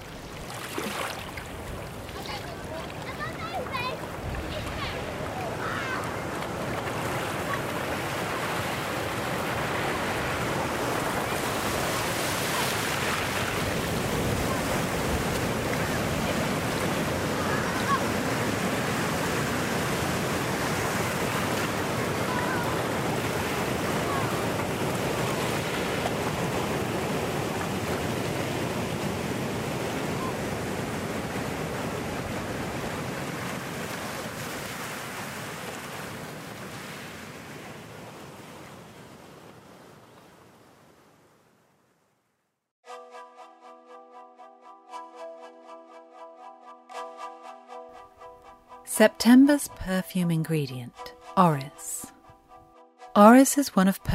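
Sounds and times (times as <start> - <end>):
ocean surf waves breaking on the shore: 0.0 - 41.9
speech: 48.9 - 52.0, 53.2 - 54.1.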